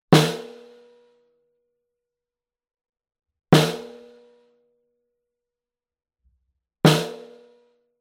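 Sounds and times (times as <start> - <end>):
snare drum recorded with bidirectional condenser microphone: 0.2 - 0.8, 3.6 - 4.0.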